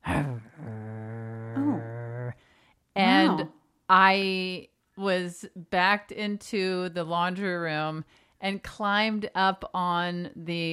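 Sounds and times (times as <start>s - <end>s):
person imitating a dog growl: 0.0s - 2.4s, 3.0s - 3.5s
speech: 3.9s - 10.7s.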